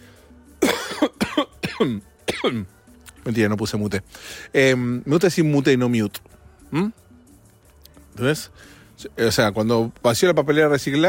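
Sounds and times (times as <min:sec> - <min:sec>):
person coughing: 0:00.6 - 0:02.7
speech: 0:01.4 - 0:07.0, 0:08.2 - 0:11.0.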